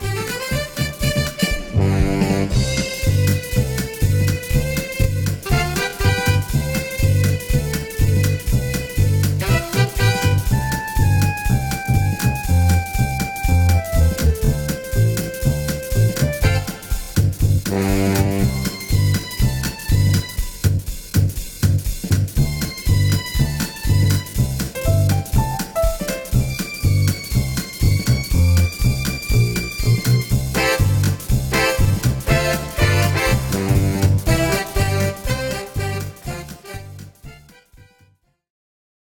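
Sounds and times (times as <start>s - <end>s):
audition accompaniment music: 0.0s - 38.1s.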